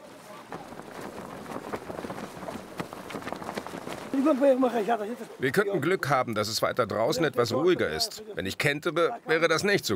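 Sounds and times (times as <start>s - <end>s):
strong sea wind roaring against the microphone during a sailing regatta: 0.5s - 4.2s
speech: 4.2s - 9.9s.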